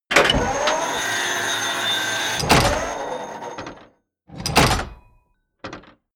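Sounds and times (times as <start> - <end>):
large tank turret rotating: 0.1 - 5.0.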